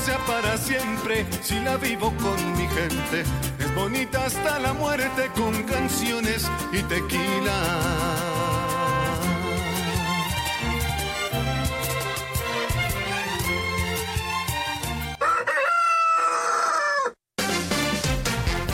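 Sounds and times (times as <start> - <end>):
speech: 0.2 - 8.4
busy dense music: 7.5 - 15.2, 17.4 - 18.7
rooster crowing: 15.2 - 17.2.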